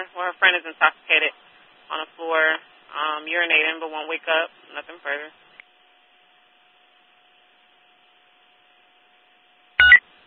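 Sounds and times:
speech: 0.0s - 5.4s
telephone keypad dialing tone while placing a callback: 9.8s - 10.0s.

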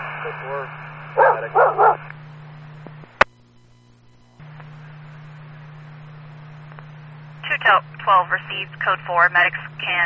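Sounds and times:
steady hum: 0.0s - 10.0s
speech: 0.2s - 2.2s, 7.7s - 10.0s
dog barking: 1.2s - 2.1s.

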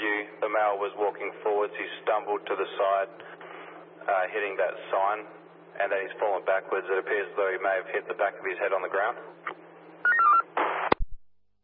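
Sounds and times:
speech: 0.5s - 9.6s
telephone dialling beeps: 10.0s - 10.4s.

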